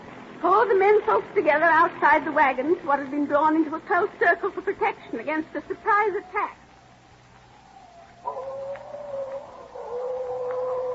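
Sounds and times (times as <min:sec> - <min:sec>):
speech: 0:00.6 - 0:06.6
coyotes howling at night: 0:05.5 - 0:10.9.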